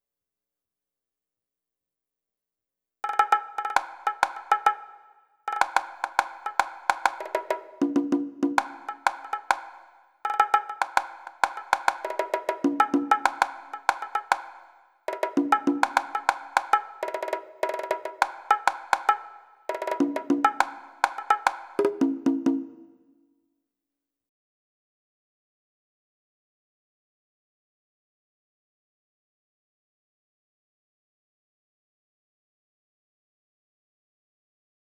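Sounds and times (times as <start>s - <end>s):
percussion: 3.0s - 23.1s.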